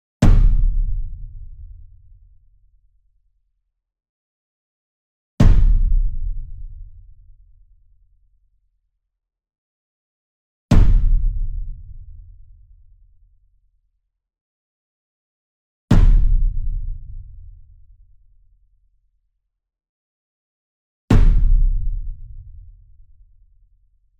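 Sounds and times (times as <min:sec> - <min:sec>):
42-inch concert bass drum hit hard with beater: 0:00.2 - 0:01.4, 0:05.4 - 0:06.4, 0:10.7 - 0:11.8, 0:15.9 - 0:17.1, 0:21.1 - 0:22.1.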